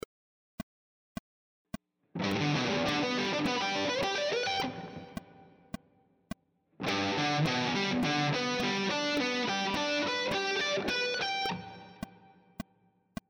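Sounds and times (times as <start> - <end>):
guitar playing triad arpeggio sequences: 2.2 - 5.4, 6.8 - 12.1.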